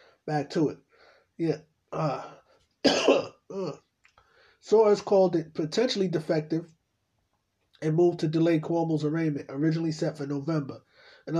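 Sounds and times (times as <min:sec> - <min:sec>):
speech: 0:00.2 - 0:03.8, 0:04.6 - 0:06.8, 0:07.8 - 0:11.3
person with a slight tickle in the throat clearing throat and coughing: 0:02.0 - 0:03.9.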